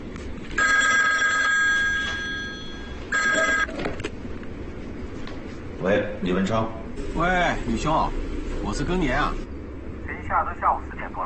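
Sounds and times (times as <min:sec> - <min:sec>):
telephone electronic trill ringing over the line during an outgoing call: 0:00.6 - 0:03.8
speech: 0:05.9 - 0:09.4.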